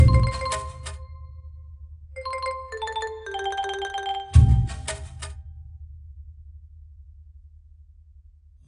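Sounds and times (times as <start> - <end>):
jungle level game music: 0.0 - 1.3, 2.2 - 5.2.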